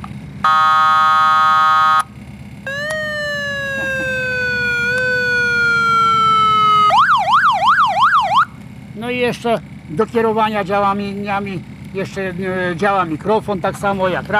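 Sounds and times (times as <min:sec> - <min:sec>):
fire truck siren cycling through modes: 0:00.4 - 0:08.6
speech: 0:09.3 - 0:14.3.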